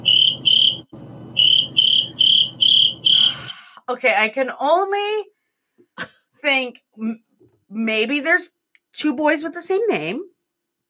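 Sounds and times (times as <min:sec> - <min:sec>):
crickets chirping: 0:00.0 - 0:03.6
speech: 0:03.9 - 0:05.3, 0:06.0 - 0:10.3.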